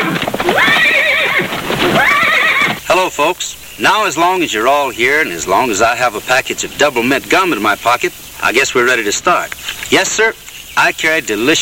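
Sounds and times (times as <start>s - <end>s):
cowboy's horse whinnying: 0.0s - 2.9s
horse hooves clip-clopping: 0.0s - 11.5s
speech: 3.0s - 11.5s.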